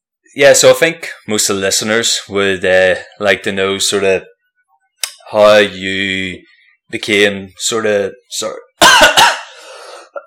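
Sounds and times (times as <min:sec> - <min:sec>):
speech: 0:00.3 - 0:04.3, 0:05.3 - 0:09.3
person coughing after water went down the wrong way: 0:08.8 - 0:10.2.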